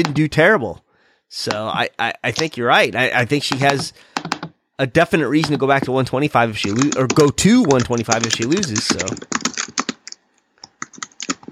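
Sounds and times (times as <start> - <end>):
speech: 0.0 - 9.4
typing on a computer keyboard: 3.5 - 4.6, 6.6 - 11.5.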